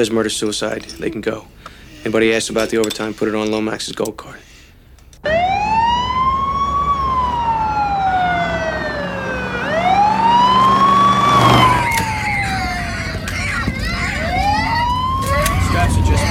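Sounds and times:
speech: 0:00.0 - 0:04.6
emergency vehicle siren wailing: 0:05.2 - 0:16.2.

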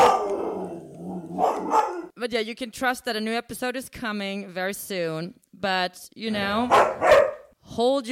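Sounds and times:
dogs barking and growling: 0:00.0 - 0:02.2, 0:06.6 - 0:07.5
speech: 0:01.5 - 0:08.0.

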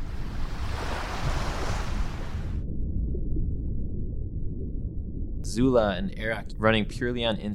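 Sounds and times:
loud roar of crashing ocean water: 0:00.0 - 0:02.6
low underwater rumble: 0:00.0 - 0:07.5
speech: 0:05.5 - 0:07.5.

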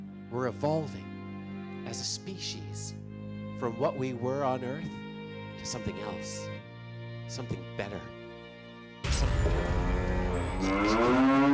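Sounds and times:
speech: 0:00.3 - 0:01.1, 0:01.8 - 0:03.0, 0:03.6 - 0:05.0, 0:05.6 - 0:06.7, 0:07.3 - 0:08.2, 0:10.6 - 0:11.4
cow mooing: 0:09.7 - 0:11.5.

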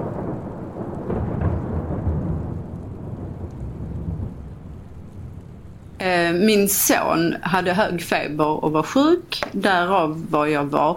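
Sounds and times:
deep rumbling thunder: 0:00.0 - 0:06.9
steady roar of heavy storm rain: 0:00.0 - 0:10.9
speech: 0:06.0 - 0:10.9.

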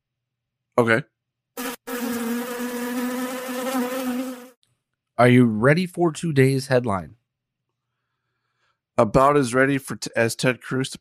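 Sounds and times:
speech: 0:00.8 - 0:01.1, 0:05.2 - 0:07.2, 0:09.0 - 0:10.9
bee buzz sound effect: 0:01.6 - 0:04.6.

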